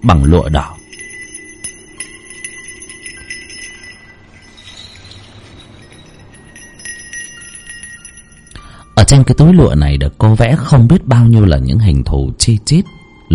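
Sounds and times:
speech: 0.0s - 0.8s, 9.1s - 13.0s
small hand bell shaken during a spirit-medium exorcism ritual: 0.0s - 9.1s.

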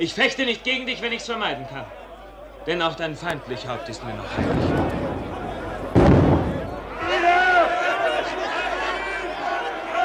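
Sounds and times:
speech: 0.0s - 2.0s, 2.6s - 5.0s
crowd of shouting voices: 0.8s - 10.0s
laughter: 1.2s - 10.0s
gunshot in a radio drama: 4.4s - 7.2s.

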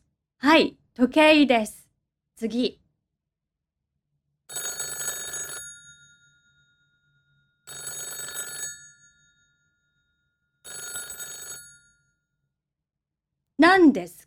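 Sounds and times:
speech: 0.4s - 1.8s, 2.4s - 2.8s, 13.8s - 14.2s
telephone bell ringing with a bright metallic trill: 4.5s - 12.3s.

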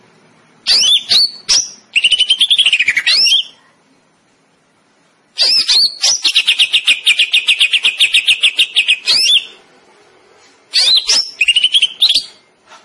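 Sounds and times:
greater green leafbird shrill whistles and rolling trill: 0.7s - 3.6s, 5.4s - 9.6s, 10.7s - 12.4s.

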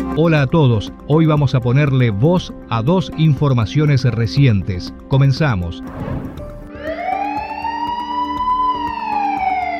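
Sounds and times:
speech: 0.2s - 6.4s
police patrol car siren wailing in a city: 6.7s - 9.7s.

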